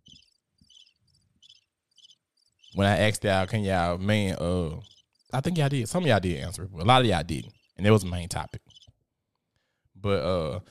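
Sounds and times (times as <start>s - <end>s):
crickets chirping in high-pitched trills: 0.0s - 3.0s
speech: 2.8s - 8.6s, 10.0s - 10.6s.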